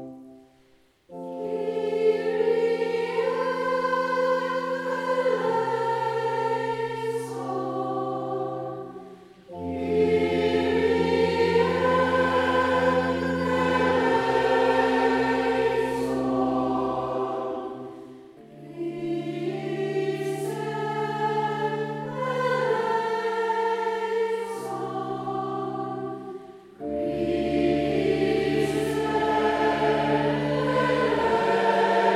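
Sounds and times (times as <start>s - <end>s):
SATB choir singing a sacred chant: 1.1s - 32.1s.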